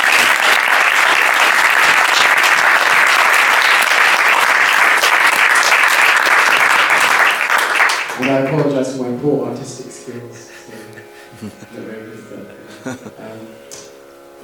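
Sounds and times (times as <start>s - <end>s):
audience applause: 0.0s - 9.0s
speech: 8.4s - 13.7s
laughter: 9.9s - 13.6s.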